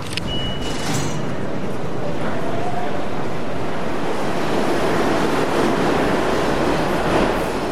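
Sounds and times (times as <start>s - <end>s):
subway train rumbling: 0.0s - 7.7s
short electronic beep: 0.2s - 1.0s.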